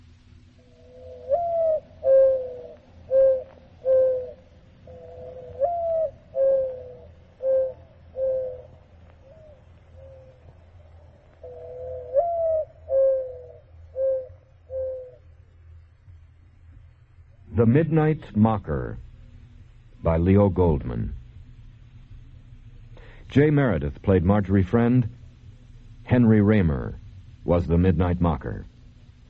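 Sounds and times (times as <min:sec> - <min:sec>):
faint low hum: 0:00.0 - 0:29.2
mourning dove cooing: 0:00.6 - 0:15.4
speech: 0:17.7 - 0:19.1, 0:20.0 - 0:21.2, 0:23.3 - 0:25.2, 0:26.1 - 0:28.7.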